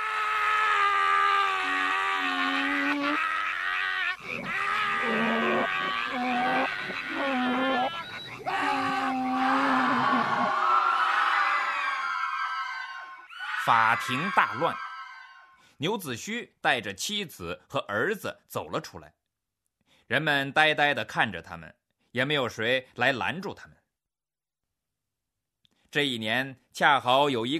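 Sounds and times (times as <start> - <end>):
man in a courtroom howling, bellowing and braying: 0.0 - 12.6
speech: 13.9 - 14.8, 15.8 - 19.2, 20.1 - 23.8, 25.9 - 27.5.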